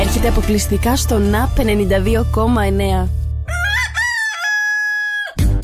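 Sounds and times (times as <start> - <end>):
speech: 0.1 - 3.2
rooster crowing: 3.5 - 5.4.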